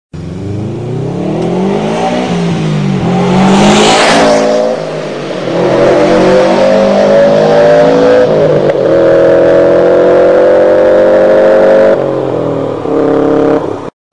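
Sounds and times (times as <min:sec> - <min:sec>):
Subaru Impreza WRX car engine: 0:00.1 - 0:13.9.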